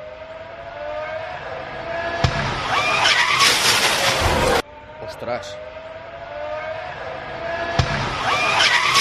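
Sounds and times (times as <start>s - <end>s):
Formula 1 car roaring: 0.0s - 8.9s
speech: 5.2s - 5.8s.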